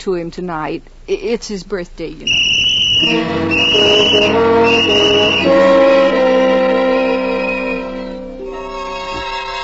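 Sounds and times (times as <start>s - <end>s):
speech: 0.0s - 6.4s
child blowing a shrill whistle: 2.2s - 8.5s.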